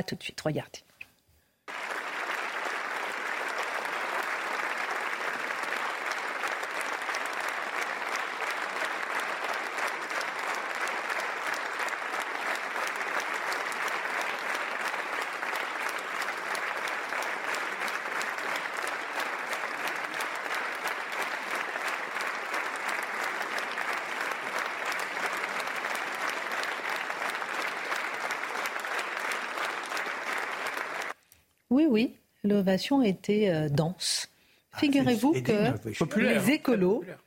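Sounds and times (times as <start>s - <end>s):
speech: 0.0s - 0.9s, 32.0s - 37.2s
large crowd of parliament members applauding in standing ovation: 1.6s - 31.2s, 35.0s - 36.6s.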